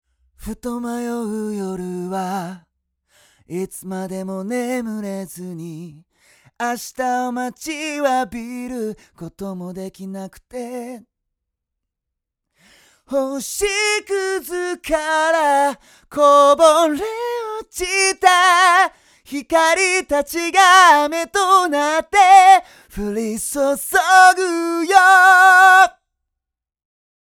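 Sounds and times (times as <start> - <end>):
person singing: 13.1 - 26.0.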